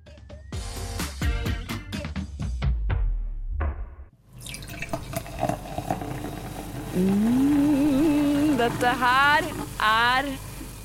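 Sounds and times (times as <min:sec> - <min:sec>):
music: 0:00.0 - 0:04.2
soda pouring and fizzing in a glass: 0:04.4 - 0:10.8
speech: 0:07.0 - 0:07.7, 0:08.6 - 0:10.5.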